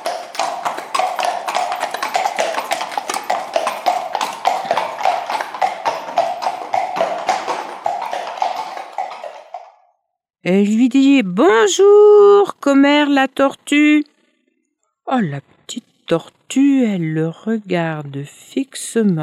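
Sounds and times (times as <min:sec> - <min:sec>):
white horse hooves clip-clopping: 0:00.0 - 0:09.9
speech: 0:10.5 - 0:14.1, 0:15.1 - 0:19.2.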